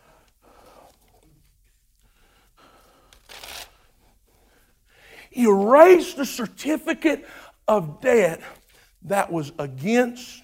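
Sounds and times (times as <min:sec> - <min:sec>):
paper ripping out of a notebook: 0:03.2 - 0:03.7
speech: 0:05.3 - 0:10.4.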